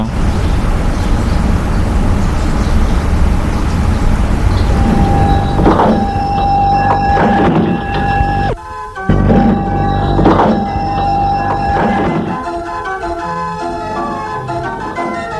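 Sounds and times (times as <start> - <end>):
bus engine idling at a bus stop: 0.0 - 15.3
bus brake squeals: 4.6 - 11.8.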